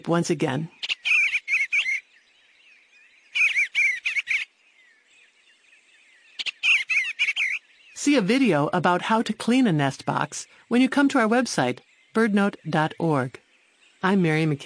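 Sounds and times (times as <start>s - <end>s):
speech: 0.0s - 0.8s, 8.1s - 13.4s, 14.0s - 14.6s
Eastern Bluebird chattering slurred calls: 0.8s - 2.0s, 3.3s - 4.5s, 6.3s - 7.7s.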